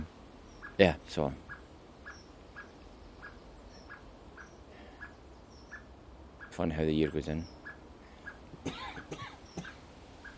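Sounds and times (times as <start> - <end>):
speech: 0.8 - 1.4, 6.6 - 7.6, 8.6 - 8.9
person with a sore rickety throat coughing in the morning: 8.6 - 9.7.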